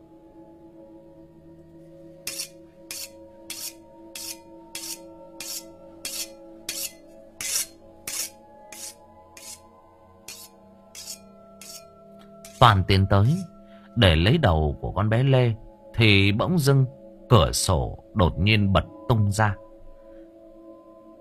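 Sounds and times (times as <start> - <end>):
butcher's knife scraped against the edge of a plate to sharpen it: 2.2 - 9.6, 10.3 - 12.6
speech: 12.6 - 19.6.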